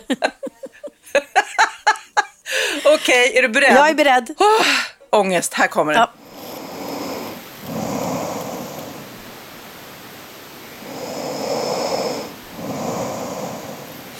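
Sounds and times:
speech: 0.0 - 0.3, 3.1 - 6.2
laughter: 0.0 - 3.2
sleeping person snoring: 6.2 - 9.3, 10.7 - 14.1.

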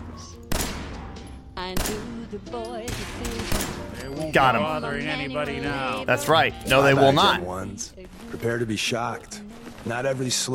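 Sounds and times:
video game gunfire: 0.1 - 4.0
speech: 1.6 - 10.5.

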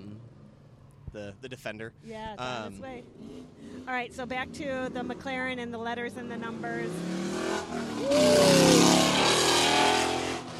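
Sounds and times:
speech: 1.2 - 9.0
American muscle car engine revving: 2.9 - 10.5.

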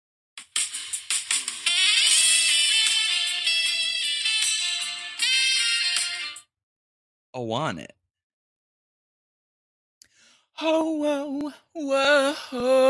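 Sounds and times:
phone ringtone playing a pop song melody with saxophone-like synth lead: 0.4 - 6.5
speech: 7.4 - 8.0, 10.6 - 12.8.

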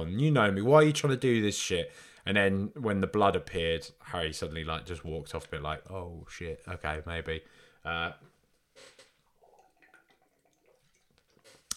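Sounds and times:
speech: 0.0 - 8.9
sips of water: 8.7 - 11.7
faint liquid gurgles: 8.8 - 11.7.

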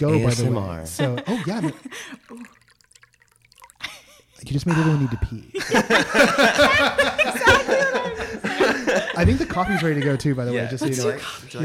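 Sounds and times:
laughter: 0.0 - 2.4, 3.9 - 11.6
speech: 0.0 - 2.5, 4.5 - 8.4, 9.0 - 11.6
wine pouring into a glass: 0.2 - 5.4.

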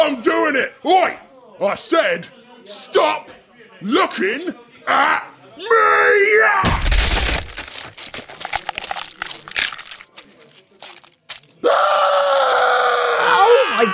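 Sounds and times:
speech: 0.0 - 7.3, 11.6 - 12.7
heavy thudding punch to the face: 6.6 - 7.7
arm bone shattering with cracking and crunching snaps: 6.6 - 13.2
man screaming in pain: 11.6 - 13.9.

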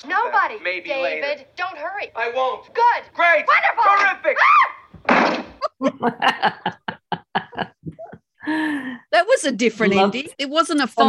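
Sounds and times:
speech: 0.0 - 5.2, 5.8 - 6.8, 8.6 - 11.0
door slamming shut: 5.0 - 5.6
chuckling laughter: 5.6 - 8.3.

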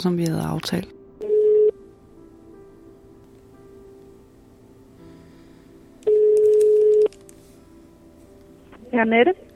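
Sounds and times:
speech: 0.0 - 1.0, 9.0 - 9.5
phone line ringback tone: 1.2 - 1.8, 6.0 - 7.1.

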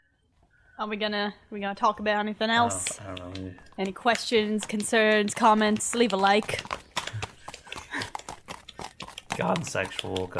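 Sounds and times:
speech: 0.8 - 6.8, 9.4 - 10.3
person imitating horse hoof clip-clop clicks: 2.5 - 10.3.

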